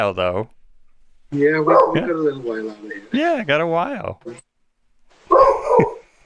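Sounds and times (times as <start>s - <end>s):
speech: 0.0s - 0.6s, 1.3s - 4.5s
mixed-breed rescue dog barking and yipping: 1.6s - 2.3s, 5.3s - 6.1s.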